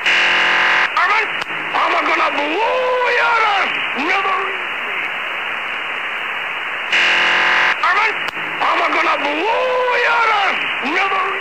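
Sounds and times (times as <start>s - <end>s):
hissy band-limited shortwave radio transmission: 0.0s - 11.3s.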